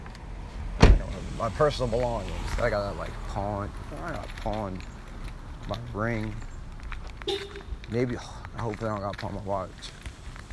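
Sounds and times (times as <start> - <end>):
car doors locking thunk: 0.8 - 1.0
speech: 1.4 - 4.9, 5.6 - 6.5, 7.2 - 10.0.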